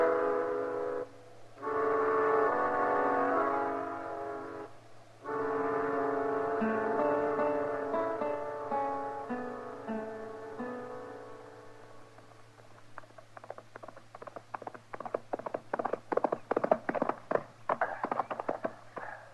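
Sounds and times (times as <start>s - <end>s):
sustained musical chords: 0.0s - 12.5s
hooves of a ridden horse trotting: 12.0s - 19.3s.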